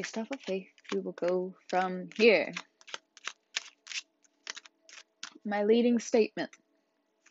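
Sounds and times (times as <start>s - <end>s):
speech: 0.0s - 2.7s, 5.4s - 6.6s
tarot cards being shuffled: 0.0s - 5.4s.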